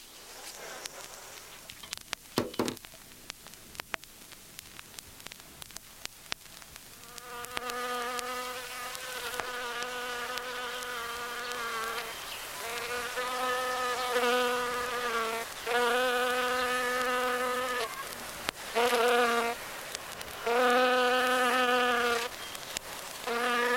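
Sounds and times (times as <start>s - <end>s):
bee-like insect buzzing: 7.0s - 18.1s, 18.7s - 19.6s, 20.4s - 22.3s, 23.2s - 23.7s.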